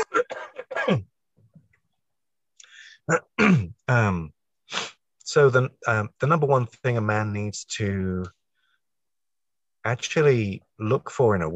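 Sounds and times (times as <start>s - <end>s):
person clearing throat: 0.0s - 1.1s, 3.1s - 3.9s
speech: 0.9s - 1.1s, 3.1s - 8.4s, 9.8s - 11.5s.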